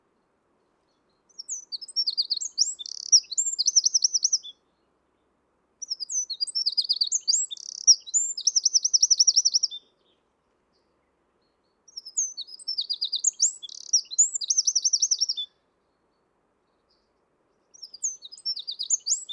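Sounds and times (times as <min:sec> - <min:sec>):
Eurasian wren singing high tumbling notes and trills: 0:01.3 - 0:04.6, 0:05.8 - 0:09.9, 0:11.9 - 0:15.6, 0:17.7 - 0:19.3.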